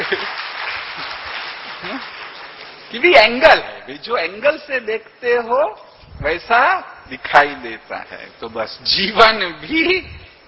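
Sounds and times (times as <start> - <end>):
audience applause for a doctor: 0.0 - 2.9
speech: 2.9 - 10.2.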